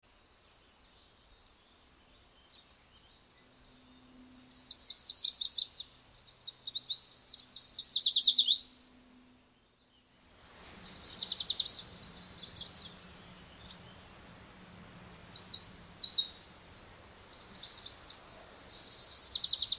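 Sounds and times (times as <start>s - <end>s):
male wood warbler singing melodically: 2.4s - 8.9s, 9.8s - 14.0s, 15.2s - 19.7s.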